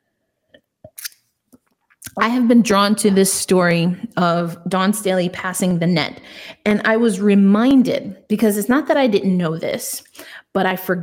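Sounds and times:
person sipping a drink: 0.6 - 1.2
speech: 2.2 - 11.0.

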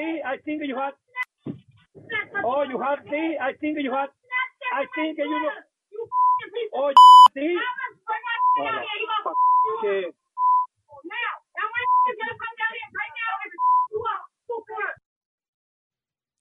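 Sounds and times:
speech: 0.2 - 1.1, 2.1 - 6.2, 6.8 - 7.8, 8.6 - 9.0, 9.8 - 10.2
agitated woman talking rapidly: 2.0 - 2.5, 7.6 - 9.3, 10.9 - 15.0
censor bleeps over profanity: 6.1 - 6.4, 7.0 - 7.3, 8.4 - 9.8, 10.4 - 10.7, 11.8 - 12.2, 13.6 - 13.9.

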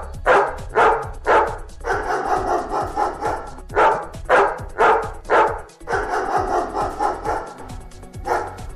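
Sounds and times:
dog barking: 0.0 - 8.7
dog howling: 0.3 - 7.6.

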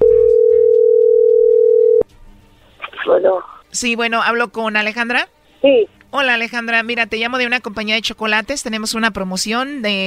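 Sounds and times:
telephone dial tone while placing a call: 0.3 - 2.0
speech: 3.2 - 10.0.

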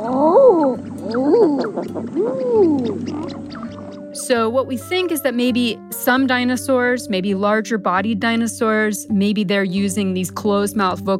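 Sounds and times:
eider duck cooing calls: 0.0 - 4.2
speech: 4.3 - 11.1.

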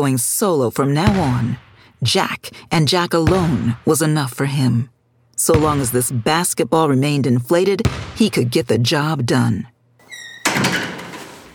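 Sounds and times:
speech: 0.0 - 9.7
brief high squeak: 10.0 - 10.6
gym door bursting open with a bang and rattling clatter: 10.0 - 11.5.

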